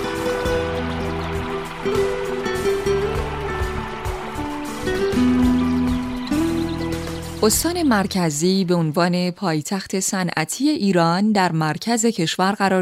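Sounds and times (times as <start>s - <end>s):
steady rushing water: 0.0s - 7.4s
sustained musical tones shifting pitch: 0.0s - 8.6s
speech: 7.4s - 12.8s.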